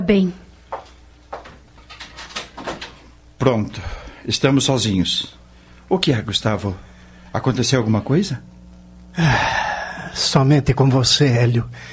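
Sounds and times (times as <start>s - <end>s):
speech: 0.1s - 0.4s, 3.4s - 9.4s, 10.2s - 11.9s
door closing: 1.9s - 3.0s.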